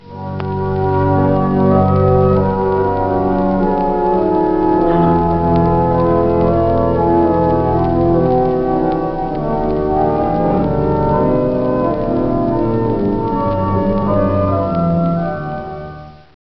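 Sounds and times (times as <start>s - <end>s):
grand organ foundation stops playing: 0.0s - 16.1s.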